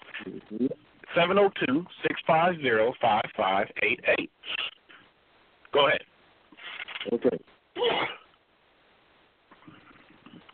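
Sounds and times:
speech: 0.2s - 4.7s, 5.7s - 6.1s, 7.0s - 8.2s
person sneezing: 7.8s - 8.3s.

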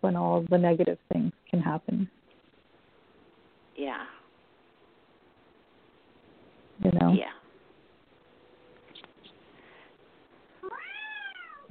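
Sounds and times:
speech: 0.0s - 2.2s, 3.8s - 4.2s, 6.8s - 7.4s
cat meowing: 10.6s - 11.7s.

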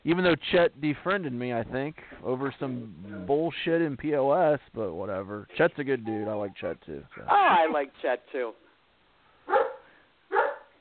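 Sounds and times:
speech: 0.0s - 8.6s
dog barking: 9.4s - 10.7s.

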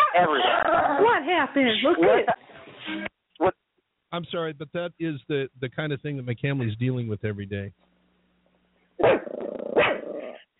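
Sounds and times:
speech: 0.2s - 7.8s, 9.0s - 9.3s
Chihuahua growling: 9.0s - 10.4s.

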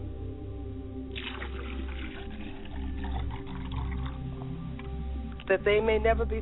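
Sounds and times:
low hum: 0.0s - 6.3s
water pouring into a glass: 1.1s - 4.9s
speech: 5.5s - 6.3s.

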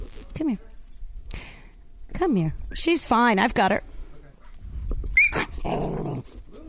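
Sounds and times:
speech: 0.4s - 0.7s, 2.2s - 3.9s
female dog yelping: 5.2s - 5.7s
female dog growling: 5.4s - 6.4s.

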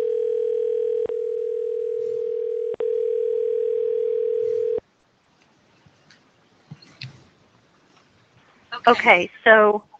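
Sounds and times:
cell phone ringback tone: 0.0s - 4.8s
speech: 8.8s - 9.9s.

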